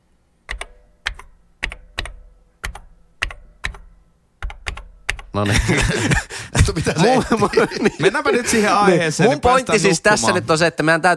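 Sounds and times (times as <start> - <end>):
computer keyboard typing with sharp plasticky key clicks: 0.5 - 5.4
laughter: 5.4 - 10.5
speech: 5.4 - 11.1.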